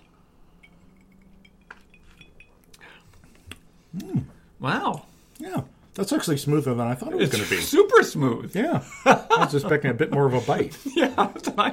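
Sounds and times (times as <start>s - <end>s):
glasses of a gin cocktail clinking in a toast: 0.0s - 2.9s
speech: 3.9s - 11.7s
laughter: 8.7s - 11.7s.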